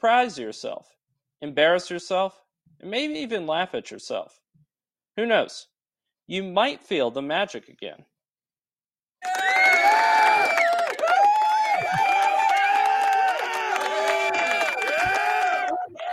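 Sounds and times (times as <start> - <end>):
speech: 0.0 - 4.4, 5.2 - 5.7, 6.3 - 8.1
crowd of students cheering: 9.2 - 16.1
students clapping: 9.2 - 16.1.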